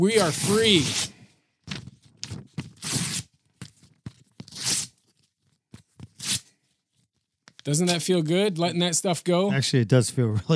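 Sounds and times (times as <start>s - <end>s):
speech: 0.0s - 1.2s, 7.6s - 10.5s
sheet of paper being ripped into pieces: 0.1s - 5.0s, 6.0s - 6.5s.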